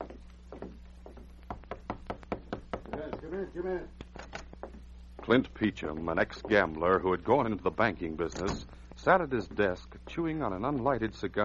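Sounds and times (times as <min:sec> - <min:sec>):
low steady hum: 0:00.0 - 0:11.4
knocking on an office door at a bank: 0:01.5 - 0:03.4
speech: 0:03.4 - 0:04.0, 0:05.3 - 0:11.4.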